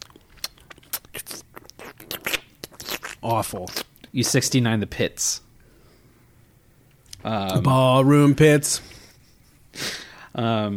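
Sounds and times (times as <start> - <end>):
crunchy bites: 0.0 - 4.4
wet squelchy munching and slurping: 0.0 - 4.5
speech: 3.2 - 5.4, 7.2 - 8.9, 10.4 - 10.7.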